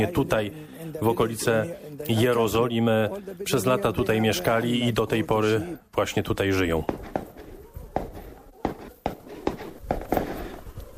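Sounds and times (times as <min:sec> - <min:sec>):
speech: 0:00.0 - 0:07.2
rough outdoor noise: 0:00.0 - 0:10.9
gunshots from shooting practice at a police post near Jerusalem: 0:06.8 - 0:10.9.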